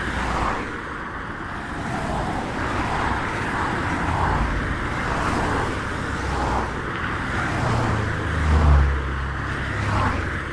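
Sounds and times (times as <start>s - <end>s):
vehicles swishing past on a busy main road: 0.0s - 10.5s.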